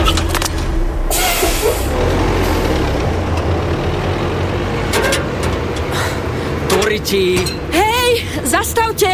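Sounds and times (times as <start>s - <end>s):
heavy garbage truck engine rumbling as the truck pulls away: 0.0s - 9.1s
garbage truck air brakes hissing: 1.1s - 2.7s
speech: 7.0s - 7.8s, 8.5s - 9.1s.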